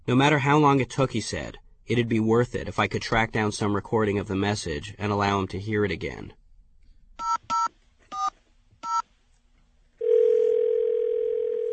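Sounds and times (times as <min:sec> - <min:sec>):
speech: 0:00.1 - 0:06.4
telephone dial tone: 0:10.0 - 0:11.7.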